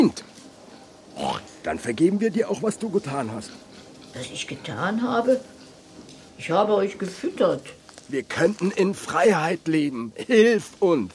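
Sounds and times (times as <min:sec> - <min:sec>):
quiet hiss: 0:00.0 - 0:11.1
domestic pig grunting: 0:01.2 - 0:01.6
speech: 0:01.6 - 0:05.6, 0:06.4 - 0:11.1.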